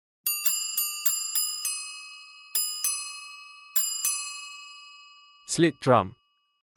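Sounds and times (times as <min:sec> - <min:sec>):
bell tree chimes: 0:00.3 - 0:06.6
speech: 0:05.5 - 0:06.2.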